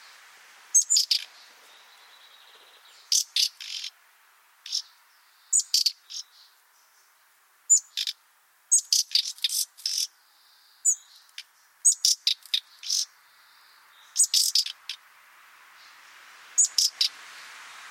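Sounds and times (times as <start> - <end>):
Common nightingale Luscinia megarhynchos scratchy calls: 0.0 - 4.0, 4.6 - 17.8.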